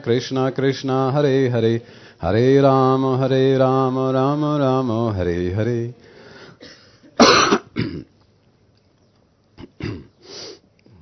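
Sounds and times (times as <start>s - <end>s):
speech: 0.0s - 6.8s
person coughing: 6.6s - 8.1s, 9.6s - 10.2s
throat-clearing rasp: 6.6s - 8.1s, 9.6s - 10.2s.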